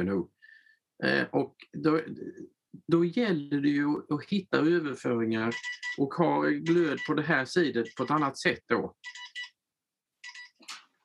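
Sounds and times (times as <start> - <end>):
speech: 0.0 - 0.4, 1.0 - 9.3
phone ringtone with bright electronic tones: 5.5 - 6.0, 7.8 - 8.3, 9.0 - 9.6, 10.2 - 10.6.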